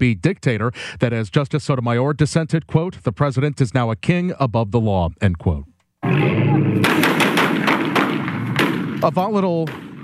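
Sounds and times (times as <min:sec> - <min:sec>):
speech: 0:00.0 - 0:06.5, 0:09.0 - 0:09.9
gunfire during a police officer-involved shooting: 0:06.0 - 0:10.0.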